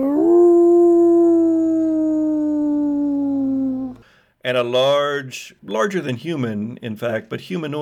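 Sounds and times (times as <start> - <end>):
large humanoid creature howling at the moon: 0.0 - 4.0
speech: 4.4 - 7.8.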